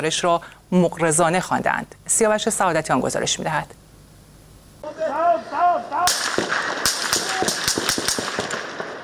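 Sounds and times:
speech: 0.0s - 3.8s
raised shouting voices: 4.8s - 7.8s
loud gunshots in a rapid uneven burst: 6.0s - 9.0s.

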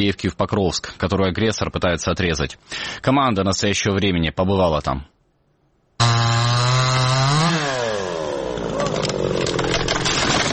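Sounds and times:
speech: 0.0s - 5.1s
chainsaw sawing damaged trees for firewood: 6.0s - 10.5s.

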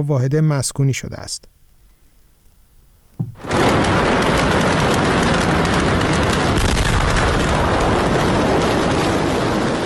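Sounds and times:
speech: 0.0s - 1.6s
massive explosion: 3.2s - 9.8s.

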